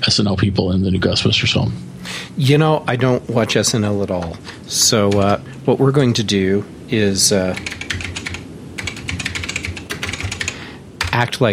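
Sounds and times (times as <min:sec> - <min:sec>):
speech: 0:00.1 - 0:07.8, 0:11.2 - 0:11.5
fingers typing on a quiet computer keyboard: 0:05.1 - 0:05.4, 0:07.5 - 0:11.2.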